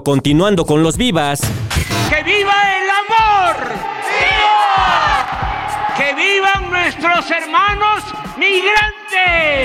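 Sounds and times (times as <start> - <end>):
speech: 0.0 - 5.4, 6.0 - 9.6
large crowd cheering and shouting: 2.1 - 9.6.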